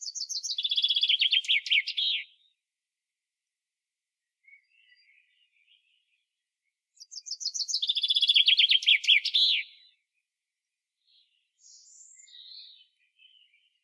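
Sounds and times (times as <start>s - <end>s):
Common chaffinch song, Fringilla coelebs: 0.0s - 2.2s, 7.0s - 9.7s, 11.5s - 13.8s.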